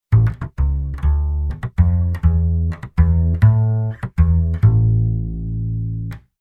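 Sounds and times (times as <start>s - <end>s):
Latin bass line: 0.0s - 6.3s.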